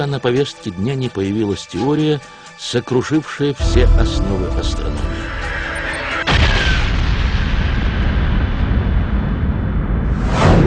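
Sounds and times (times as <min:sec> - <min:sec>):
speech: 0:00.0 - 0:05.6
loud explosion boom: 0:03.8 - 0:10.6.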